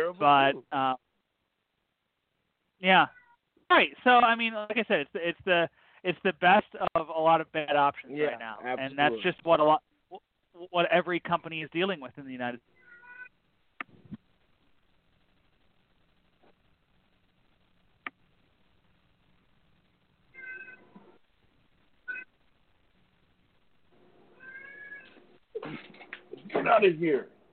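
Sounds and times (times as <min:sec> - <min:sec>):
speech: 0:00.0 - 0:01.0, 0:02.8 - 0:12.7, 0:26.6 - 0:27.4
cat meowing: 0:03.1 - 0:03.4, 0:12.8 - 0:13.3, 0:20.3 - 0:21.0, 0:24.4 - 0:25.2.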